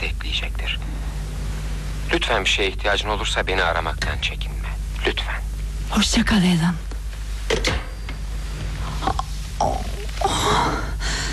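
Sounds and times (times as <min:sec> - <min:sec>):
low mechanical hum: 0:00.0 - 0:11.3
speech: 0:02.2 - 0:06.9
person gasping sharply and raggedly for breath: 0:10.2 - 0:11.3.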